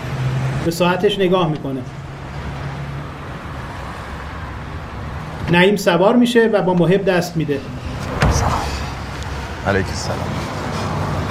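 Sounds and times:
speech: 0:00.6 - 0:02.0, 0:05.5 - 0:07.8, 0:09.6 - 0:10.5
low rumble of a car interior: 0:07.6 - 0:11.3.

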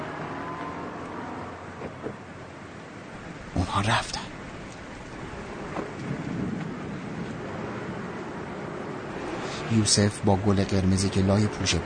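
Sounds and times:
steady dense heavy rain: 0:00.0 - 0:11.8
speech: 0:03.6 - 0:04.2, 0:09.7 - 0:11.8
low rolling thunder: 0:05.1 - 0:09.4.

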